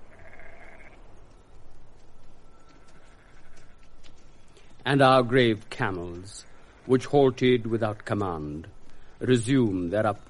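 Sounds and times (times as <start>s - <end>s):
sheep bleating while descending: 0.0s - 1.0s, 2.9s - 3.8s
speech: 4.9s - 10.2s.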